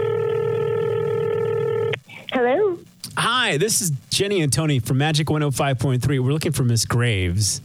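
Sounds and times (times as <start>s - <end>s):
electronic telephone tone while a number is dialed: 0.0s - 2.1s
speech: 3.5s - 7.6s.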